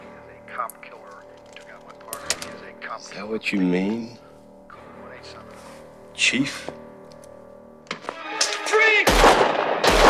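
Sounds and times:
speech: 0.6s - 4.2s, 6.2s - 6.8s
gunshots in an action film scene in a hospital: 8.0s - 10.0s.

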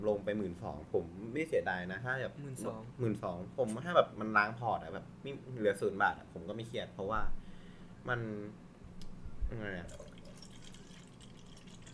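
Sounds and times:
speech: 0.0s - 7.4s, 8.0s - 8.6s, 9.5s - 10.0s
steady stream of water pouring: 9.8s - 11.9s.

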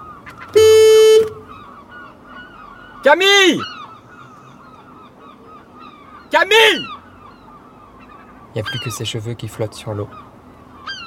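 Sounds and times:
loud buzzy horn blast: 0.5s - 1.5s
speech: 3.0s - 3.7s, 6.3s - 7.0s, 8.5s - 10.2s.

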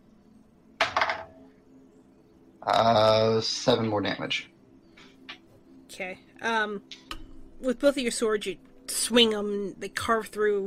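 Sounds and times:
dice clattering across a tabletop: 0.8s - 1.4s
speech: 2.6s - 4.5s, 6.0s - 10.6s.

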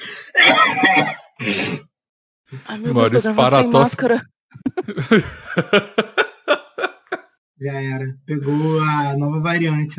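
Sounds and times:
laughter: 0.2s - 1.7s, 4.6s - 7.2s
person coughing: 0.3s - 1.8s
speech: 2.7s - 4.3s, 4.9s - 6.1s, 7.6s - 9.9s.

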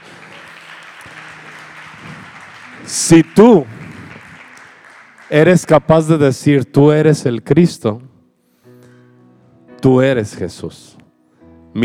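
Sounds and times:
congregation clapping during a church service: 0.0s - 6.6s
speech: 2.8s - 3.8s, 5.3s - 8.1s, 9.8s - 11.0s.

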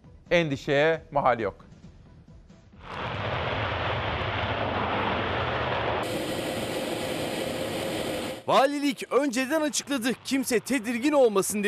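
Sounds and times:
speech: 0.3s - 1.6s, 8.5s - 11.6s
F-16 fighter jets flying at low altitude: 2.8s - 11.6s.

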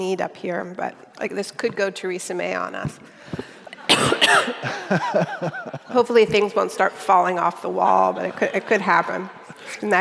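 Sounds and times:
speech: 0.0s - 9.9s
person coughing: 3.9s - 4.9s
laughter: 4.5s - 6.5s, 7.8s - 9.9s.

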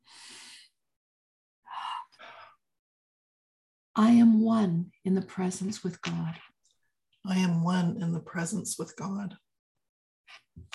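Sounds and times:
deep breath in: 0.0s - 0.7s
speech: 4.0s - 6.5s, 7.2s - 9.4s.

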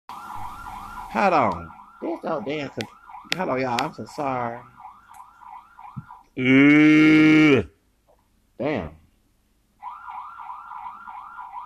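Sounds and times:
car alarm set off by wind warbling: 0.1s - 6.7s, 9.8s - 11.6s
speech: 1.1s - 4.8s, 6.4s - 7.8s, 8.6s - 9.0s
person exclaiming: 6.4s - 7.7s.

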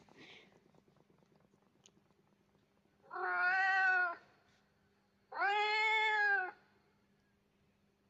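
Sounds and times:
cat meowing: 3.1s - 4.2s, 5.3s - 6.6s.

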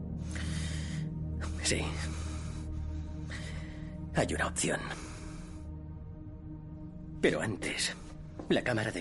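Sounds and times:
man breathing heavily: 0.2s - 4.1s, 4.8s - 6.1s
speech: 1.7s - 2.2s, 4.2s - 5.1s, 7.2s - 8.9s.

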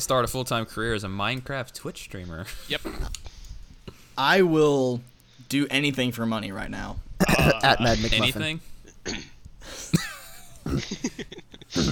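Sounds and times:
speech: 0.0s - 3.2s, 4.2s - 10.0s, 10.7s - 11.9s
single sharp cough with strained wheezy tone: 7.2s - 8.3s, 9.0s - 9.4s, 11.7s - 11.9s.

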